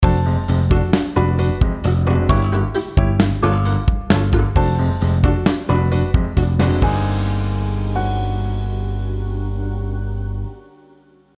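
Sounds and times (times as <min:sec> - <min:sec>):
chromatic polychords ending: 0:00.0 - 0:11.3.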